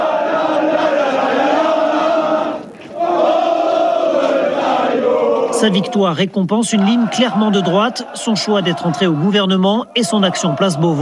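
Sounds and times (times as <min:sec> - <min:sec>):
laughter: 0:00.0 - 0:11.0
party activists cheering and acclaiming their leader's arrival: 0:00.0 - 0:11.0
speech: 0:05.6 - 0:11.0.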